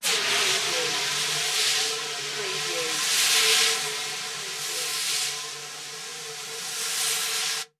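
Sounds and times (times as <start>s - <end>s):
fire extinguisher: 0.0s - 7.7s.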